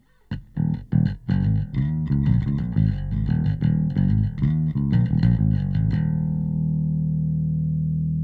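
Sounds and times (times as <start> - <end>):
electric bass: 0.3 - 8.2.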